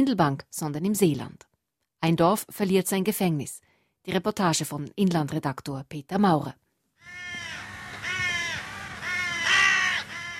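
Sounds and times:
speech: 0.0 - 7.2
crows cawing outdoors: 7.0 - 10.3.

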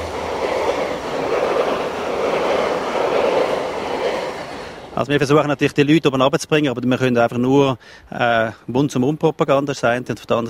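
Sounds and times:
train wheels on rails: 0.0 - 5.5
train rumbling past: 0.0 - 5.8
speech: 5.0 - 10.4.

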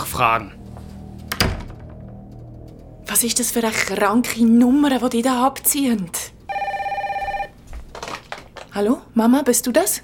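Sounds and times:
speech: 0.2 - 0.7, 3.1 - 6.4, 8.8 - 10.0
telephone ringing: 6.5 - 7.7.

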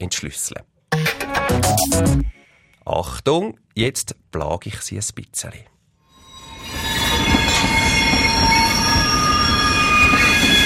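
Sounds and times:
speech: 0.0 - 0.7, 1.5 - 5.8
train wheels screeching against the rails: 6.0 - 10.6.

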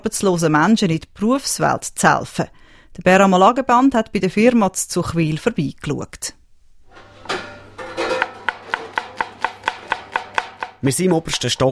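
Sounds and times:
speech: 0.0 - 6.4, 10.8 - 11.6
knife chopping onions on a cutting board in a kitchen: 8.2 - 10.8.

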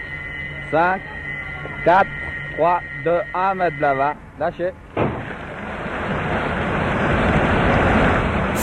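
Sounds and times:
speech: 0.7 - 5.2
rushing water flooding the reservoir behind the Grande Dixence dam in Switzerland: 5.0 - 8.6.

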